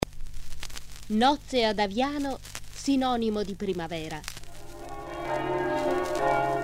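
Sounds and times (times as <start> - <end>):
speech: 1.1 - 4.4
church bells ringing for a wedding procession in Aviano, Friuli: 4.5 - 6.6.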